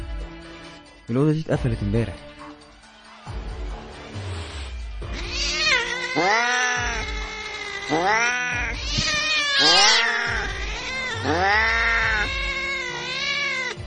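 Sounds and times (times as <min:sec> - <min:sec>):
speech: 0:01.1 - 0:02.4
cats meowing and caterwauling inside a closed room: 0:05.1 - 0:13.8.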